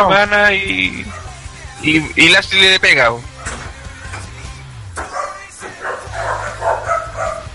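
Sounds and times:
speech: 0.0 - 3.3
dog barking in sharp yaps and woofs: 1.1 - 1.4, 5.0 - 7.5.

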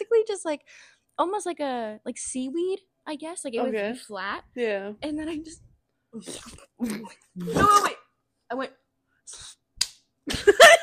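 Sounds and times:
speech: 0.3 - 9.6
wet slap of plant gel onto skin: 9.8 - 10.1.

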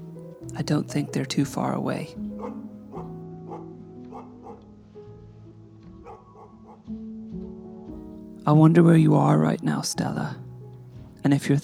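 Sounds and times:
speech: 0.6 - 2.6, 8.5 - 10.4, 11.2 - 11.6
dog barking: 2.3 - 4.6, 6.0 - 6.9.

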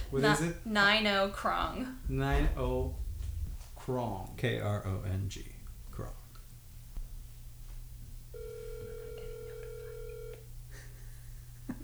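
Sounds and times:
low hum: 0.0 - 11.8
speech: 0.1 - 3.0, 3.9 - 6.2
telephone line ringing tone after dialing: 8.3 - 10.5.

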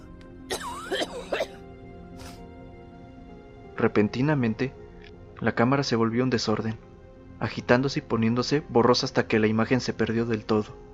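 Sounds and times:
woman in a harsh violent coughing fit: 0.5 - 1.6
speech: 3.8 - 4.8, 5.4 - 10.9.

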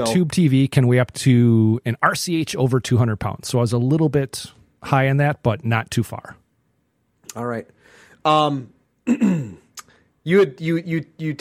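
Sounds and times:
speech: 0.0 - 6.4, 7.3 - 9.6, 10.2 - 11.4
person clearing throat: 9.0 - 9.8.

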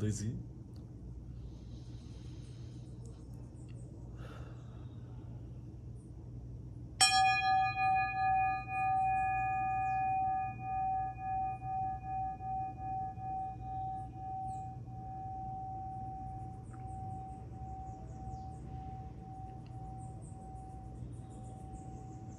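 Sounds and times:
speech: 0.0 - 0.6
quiet hum: 0.0 - 22.3
small bell struck and ringing: 7.0 - 22.3.

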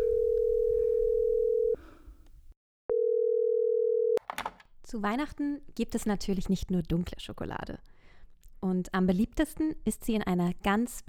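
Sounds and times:
ringing tone from a call placed on a mobile phone: 0.0 - 1.8, 2.9 - 4.2
speech: 4.9 - 7.9, 8.6 - 11.0.

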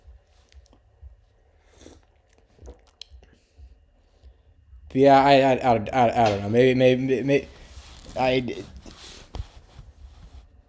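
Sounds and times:
person sipping a drink: 1.6 - 3.4
speech: 4.9 - 7.6, 8.2 - 8.8.

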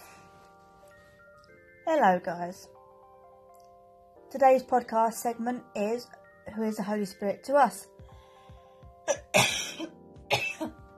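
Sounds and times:
speech: 1.9 - 2.8, 4.3 - 8.0
person clearing throat from a tickle in the throat: 9.1 - 10.8
person coughing from a tickle in the throat: 9.1 - 10.8.

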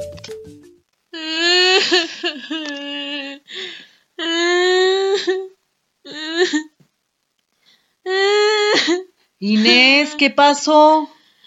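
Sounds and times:
girl crying loudly with wavering wails: 1.2 - 3.5, 4.2 - 6.7, 8.1 - 10.2
speech: 10.2 - 11.1.

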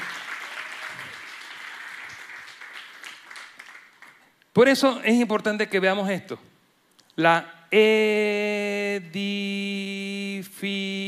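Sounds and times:
audience applauding: 0.0 - 4.3
speech: 4.6 - 6.5, 7.2 - 11.0.

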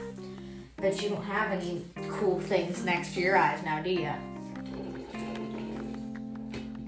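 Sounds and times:
speech: 0.8 - 4.3
slurping the last water and ice through a straw from a water bottle: 4.6 - 6.2.

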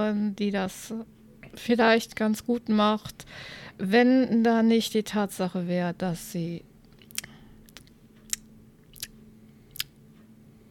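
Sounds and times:
speech: 0.0 - 6.7
faint steady hum: 0.0 - 10.6
wet lip smacks and mouth clicks: 6.9 - 10.0.

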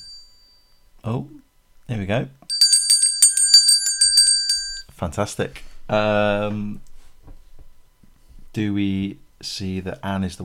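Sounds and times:
bright high-pitched bell ringing rapidly: 0.0 - 0.7, 2.5 - 4.8
speech: 1.0 - 2.4, 5.0 - 6.9, 8.5 - 10.4.

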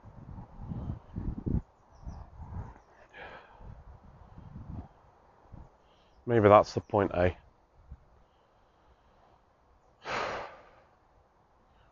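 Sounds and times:
low rumbling outdoor noise: 0.0 - 11.9
faint bird chirps in a field: 1.8 - 3.2
speech: 6.3 - 7.4.

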